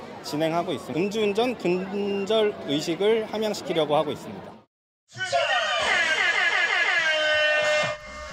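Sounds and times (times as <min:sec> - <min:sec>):
crowd murmur and chatter: 0:00.0 - 0:08.2
speech: 0:00.3 - 0:05.2
air horn blast as a race starting signal: 0:07.0 - 0:08.3.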